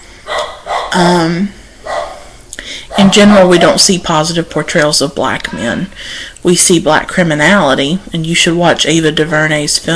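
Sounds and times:
dog barking: 0.3s - 1.0s, 1.8s - 2.3s, 2.9s - 3.3s
speech: 0.9s - 1.6s, 3.0s - 9.9s.

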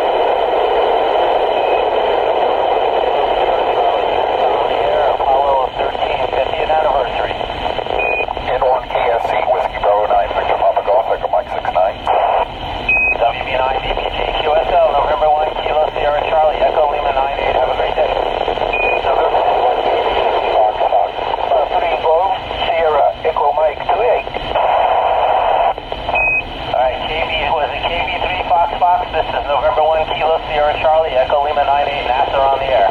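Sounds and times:
hissy band-limited satellite radio static from an amateur radio contact: 0.0s - 32.8s
short clean Quindar-style beeps: 8.0s - 8.4s, 12.9s - 13.2s, 18.7s - 19.1s, 26.2s - 26.4s.

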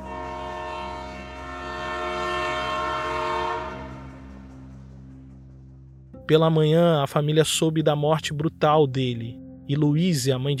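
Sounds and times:
train horn blaring a sustained chord: 0.0s - 5.0s
heavy rumble of a passing train: 0.0s - 6.1s
speech: 6.3s - 10.5s.

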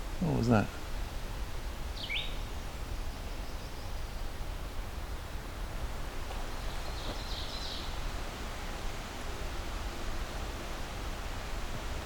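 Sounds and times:
steady hiss of noise: 0.0s - 12.0s
speech: 0.2s - 0.8s
red-eyed vireo singing slurred phrases: 2.0s - 4.2s, 6.6s - 8.0s.

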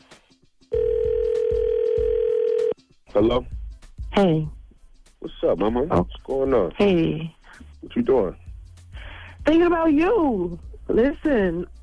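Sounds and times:
loud steady unbroken telephone line tone: 0.7s - 2.7s
speech: 3.1s - 3.5s, 4.1s - 4.5s, 5.2s - 8.4s, 9.5s - 11.7s.

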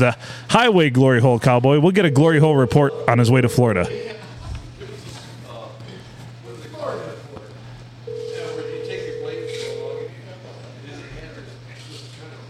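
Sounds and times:
speech: 0.0s - 4.1s
ringback tone from an outgoing phone call: 2.0s - 4.1s, 8.1s - 10.1s
constant low hum: 2.0s - 4.2s.

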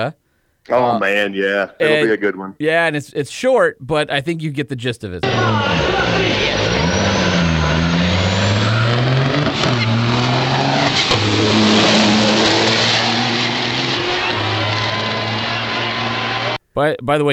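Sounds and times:
speech: 0.0s - 6.9s, 16.8s - 17.3s
semi-truck engine roaring and revving: 5.2s - 16.6s.

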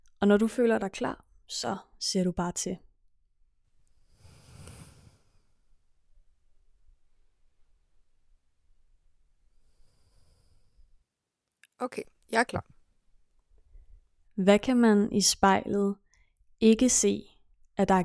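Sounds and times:
speech: 0.2s - 2.8s, 11.8s - 12.8s, 14.4s - 16.0s, 16.6s - 18.0s
slow deep breaths: 4.0s - 5.6s, 9.5s - 10.9s.

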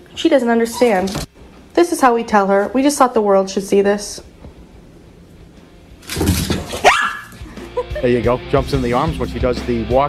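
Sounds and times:
speech: 0.2s - 4.3s, 8.0s - 10.0s
excited deaf female dog whining or yelping: 6.8s - 7.5s
laughter: 7.4s - 8.4s.

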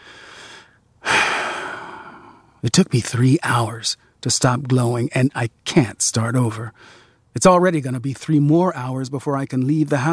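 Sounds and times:
person drawing a deep breath: 0.0s - 2.6s, 6.8s - 7.2s
person exhaling: 0.0s - 2.6s
speech: 2.6s - 10.1s.

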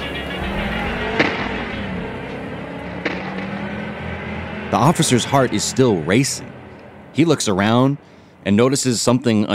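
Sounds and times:
car engine roaring as it drives off: 0.0s - 9.5s
rumbling road noise: 0.0s - 9.5s
sharp clunks: 3.0s - 3.7s
speech: 4.7s - 6.6s, 7.2s - 9.5s.

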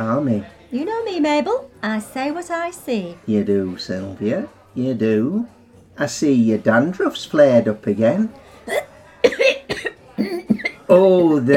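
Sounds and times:
speech: 0.0s - 8.9s, 10.2s - 11.5s
person in a harsh coughing fit: 8.7s - 10.9s.

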